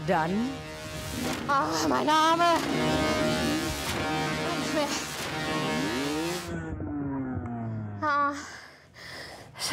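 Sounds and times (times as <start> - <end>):
speech: 0.0 - 3.2, 8.0 - 8.6, 9.6 - 9.7
motocross dirt bike engine revving during motocross training: 0.0 - 7.4.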